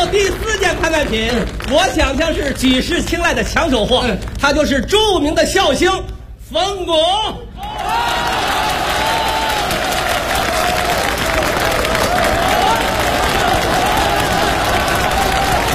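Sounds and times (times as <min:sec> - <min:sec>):
audience at a live stage show applauding: 0:00.0 - 0:02.2, 0:07.6 - 0:15.7
speech: 0:00.1 - 0:08.3.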